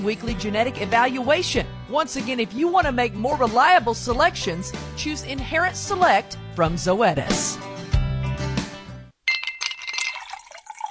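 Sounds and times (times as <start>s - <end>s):
speech: 0.0s - 7.7s
bright glass clink: 9.3s - 10.8s
cool water poured into a glass: 9.3s - 10.8s.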